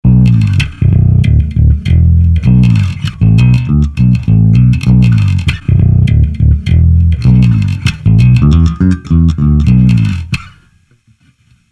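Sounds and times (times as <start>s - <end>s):
Mayones Patriot5 bass guitar on neck and bridge pickups: 0.0s - 11.1s.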